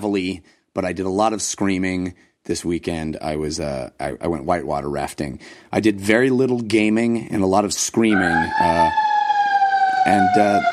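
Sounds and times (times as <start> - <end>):
speech: 0.0 - 9.0, 10.0 - 10.7
fire engine low horn blasts: 8.1 - 10.7
fire engine siren wailing: 8.1 - 10.7.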